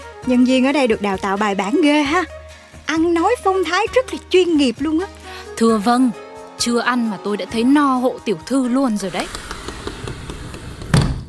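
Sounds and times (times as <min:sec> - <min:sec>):
speech: 0:00.2 - 0:09.4
Japanese-style sliding door opening: 0:09.0 - 0:11.2
firm wooden clack of sliding door reaching end of its track: 0:10.8 - 0:11.2.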